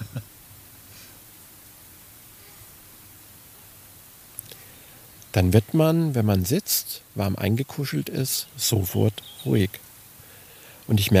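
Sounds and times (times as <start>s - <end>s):
laughter: 0.0s - 0.2s
wind rushing through tree leaves: 0.0s - 11.1s
speech: 5.3s - 9.8s, 10.9s - 11.1s.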